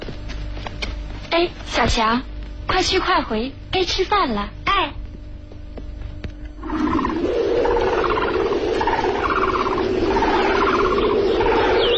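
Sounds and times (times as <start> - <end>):
speech: 1.3 - 5.0
birds calling from reeds: 6.6 - 11.9
loud wind roar under dark windy skies: 6.6 - 11.9.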